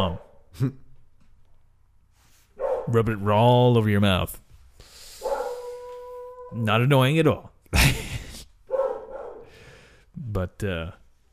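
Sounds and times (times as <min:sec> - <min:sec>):
speech: 0:00.0 - 0:00.8, 0:02.9 - 0:04.4, 0:06.5 - 0:08.2, 0:10.2 - 0:11.0
dog giving a short bark or yip: 0:02.6 - 0:03.0, 0:05.2 - 0:06.0, 0:08.7 - 0:09.5.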